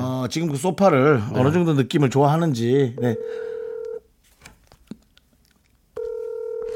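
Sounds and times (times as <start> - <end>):
speech: 0.2 - 3.5
telephone keypad dialing tones: 3.0 - 4.0, 6.0 - 6.7.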